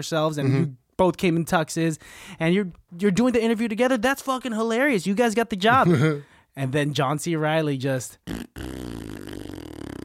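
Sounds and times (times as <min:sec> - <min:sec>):
speech: 0:00.0 - 0:08.9
voice making a buzzy fart imitation raspberry: 0:05.7 - 0:06.2, 0:08.2 - 0:10.0.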